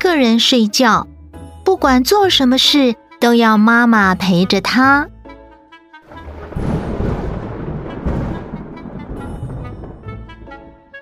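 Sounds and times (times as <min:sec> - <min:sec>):
speech: 0:00.1 - 0:01.1, 0:01.7 - 0:05.1
thunder rumbling: 0:06.1 - 0:11.0.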